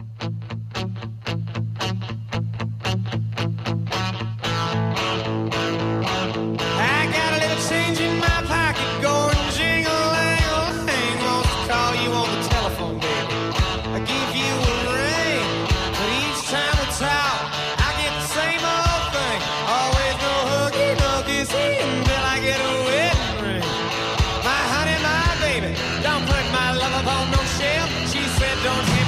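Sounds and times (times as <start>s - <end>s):
distorted electric guitars: 0.0s - 29.0s
loud southern rock song by a US band: 0.0s - 29.0s
steady driving drum beat: 6.6s - 29.0s.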